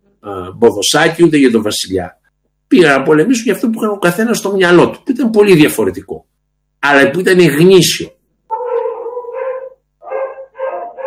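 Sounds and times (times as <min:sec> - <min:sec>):
speech: 0:00.2 - 0:08.2
dogs barking and yowling: 0:08.5 - 0:11.0.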